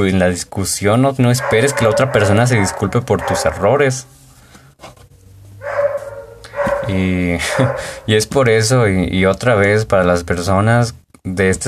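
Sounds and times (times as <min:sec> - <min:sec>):
speech: 0:00.0 - 0:04.2, 0:06.9 - 0:11.6
dogs barking: 0:01.2 - 0:04.1, 0:05.6 - 0:08.2
laughter: 0:07.4 - 0:08.0.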